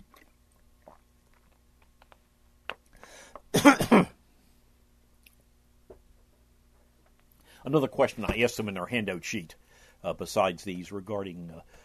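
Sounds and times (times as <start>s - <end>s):
person sipping and gulping water: 0.0s - 3.5s
speech: 7.7s - 11.8s.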